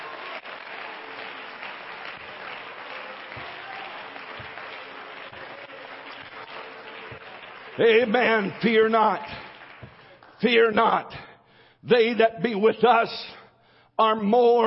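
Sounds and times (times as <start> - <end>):
congregation applauding: 0.0 - 10.8
speech: 7.8 - 9.4, 10.4 - 13.4, 14.0 - 14.6.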